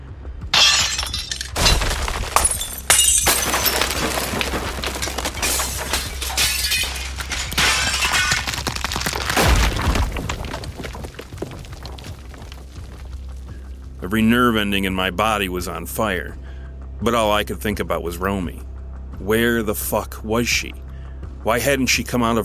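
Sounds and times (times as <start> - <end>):
glass and stone shattering: 0.5 - 13.3
speech: 14.1 - 16.4, 17.0 - 20.8, 21.4 - 22.4.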